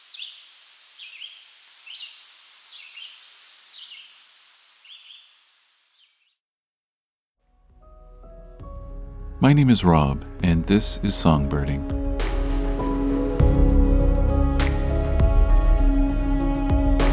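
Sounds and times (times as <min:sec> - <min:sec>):
male Blackburnian Warbler singing: 0:01.0 - 0:05.3
music: 0:07.5 - 0:17.1
speech: 0:09.4 - 0:12.0.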